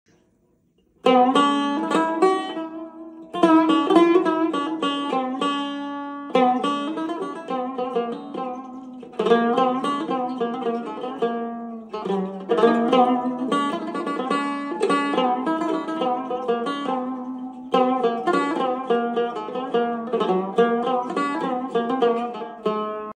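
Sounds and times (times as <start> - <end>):
Cümbüş playing: 1.0 - 23.1.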